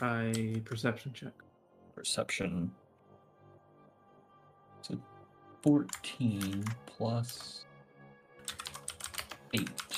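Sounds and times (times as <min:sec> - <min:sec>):
typing on a computer keyboard: 0:00.0 - 0:00.9, 0:05.8 - 0:07.6, 0:08.4 - 0:09.9
speech: 0:00.0 - 0:02.8, 0:04.8 - 0:07.7, 0:09.5 - 0:09.9.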